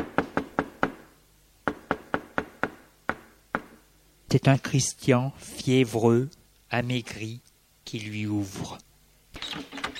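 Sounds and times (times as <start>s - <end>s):
knocking on the door of a house: 1.7s - 3.7s
speech: 4.3s - 8.8s.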